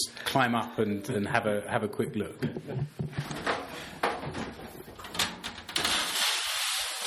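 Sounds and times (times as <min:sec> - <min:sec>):
speech: 0:00.3 - 0:03.2
sliding door scraping and rumbling along its track: 0:05.1 - 0:07.0.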